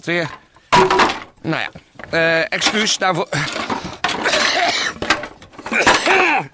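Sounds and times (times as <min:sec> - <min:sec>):
speech: 0:00.0 - 0:04.8
person coughing harshly: 0:04.2 - 0:05.0, 0:05.7 - 0:06.5.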